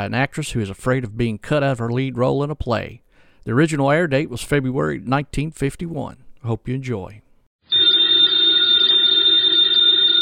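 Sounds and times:
speech: 0.0s - 7.2s
telephone bell ringing: 7.6s - 10.1s.

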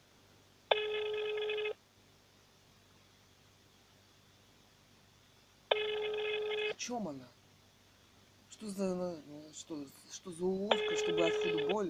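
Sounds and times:
steady telephone ringback tone: 0.7s - 1.8s, 5.7s - 6.8s, 10.7s - 11.8s
speech: 6.8s - 7.4s, 8.6s - 11.8s.

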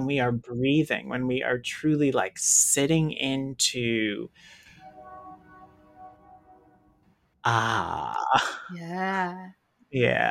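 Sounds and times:
speech: 0.0s - 4.6s, 7.4s - 10.3s
train horn blast: 4.6s - 6.8s
low droning tone: 4.6s - 7.0s.

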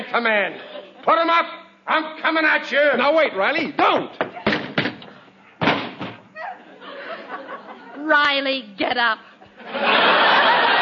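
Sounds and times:
speech: 0.1s - 4.3s, 8.0s - 10.3s
person slamming into a door: 5.6s - 6.2s
laughter: 6.4s - 8.1s, 9.4s - 10.7s.

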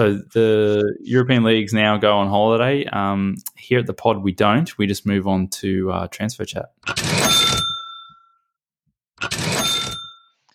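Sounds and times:
speech: 0.0s - 7.7s
bright metallic bell ringing: 7.2s - 8.4s, 9.5s - 10.4s.

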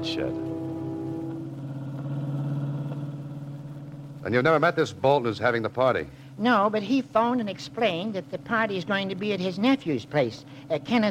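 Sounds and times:
speech: 0.0s - 0.6s, 4.2s - 11.0s
hot rod jalopy engine rumbling while driving: 0.0s - 11.0s.

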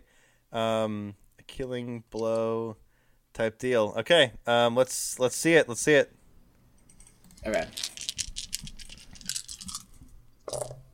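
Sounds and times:
speech: 0.5s - 2.8s, 3.4s - 6.2s, 7.4s - 7.9s
four dice clattering and rattling: 7.4s - 10.8s.

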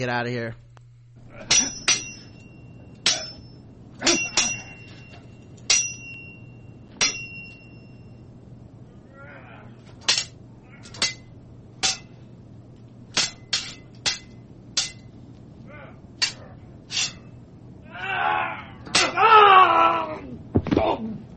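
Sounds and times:
speech: 0.0s - 0.6s, 4.0s - 4.3s
low steady hum: 0.0s - 21.3s
metal swords clanging together: 1.3s - 8.1s, 9.9s - 12.2s, 13.1s - 15.1s, 16.2s - 17.4s, 18.9s - 19.2s.

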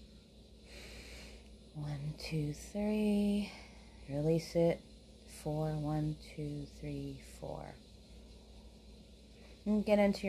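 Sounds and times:
soft airy inhale through the nose: 0.6s - 1.5s
speech: 1.8s - 7.9s, 9.6s - 10.2s.

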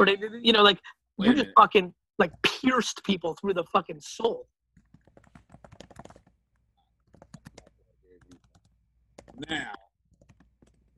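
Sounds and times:
speech: 0.0s - 4.5s, 9.4s - 9.8s
typing on a computer keyboard: 4.8s - 6.4s, 7.0s - 9.4s, 10.1s - 10.9s.

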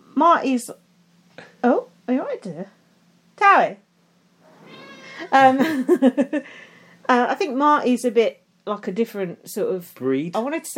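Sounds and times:
faint steady hum: 0.0s - 10.7s
speech: 0.2s - 0.8s, 1.6s - 2.8s, 3.4s - 3.8s, 5.2s - 10.7s
cat with a dirty nose meowing: 4.6s - 5.4s
laughter: 5.2s - 6.5s.

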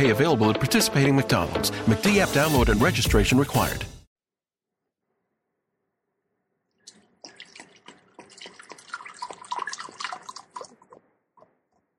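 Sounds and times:
speech: 0.0s - 4.0s
whiskey being poured slowly into a glass: 6.8s - 11.0s.

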